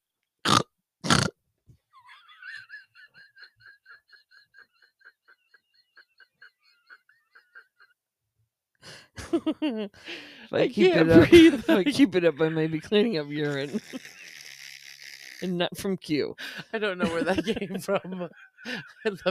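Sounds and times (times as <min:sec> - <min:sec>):
person imitating pig oinking with nasal grunts: 0:00.4 - 0:01.4, 0:13.4 - 0:15.5
laughter: 0:02.0 - 0:08.0, 0:09.2 - 0:14.6, 0:16.4 - 0:19.3
speech: 0:09.3 - 0:14.2, 0:15.4 - 0:19.3.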